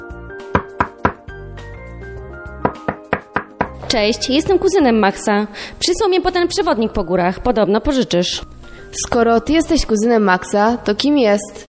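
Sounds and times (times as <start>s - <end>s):
soft music: 0.0s - 11.7s
firm knocking on a door: 0.5s - 1.3s, 2.6s - 3.9s
speech: 3.9s - 11.6s.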